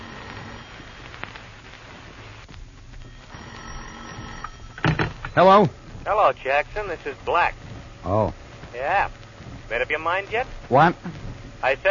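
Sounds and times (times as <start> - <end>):
office telephone bell ringing: 3.0 - 5.6
speech: 5.4 - 11.8.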